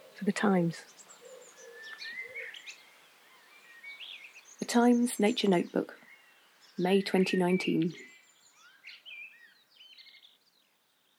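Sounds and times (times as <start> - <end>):
cuckoo calling in summer along country lanes in Suffolk England: 0.0 - 2.8
bright chirping birdsong outdoors: 0.0 - 11.1
speech: 0.2 - 1.0, 4.7 - 6.0, 6.8 - 8.1.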